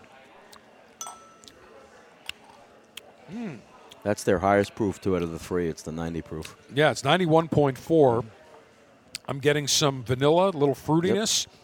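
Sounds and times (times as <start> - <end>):
glasses of bourbon clinking in a toast during a tasting: 1.0 - 1.7
speech: 3.3 - 8.4, 9.3 - 11.6.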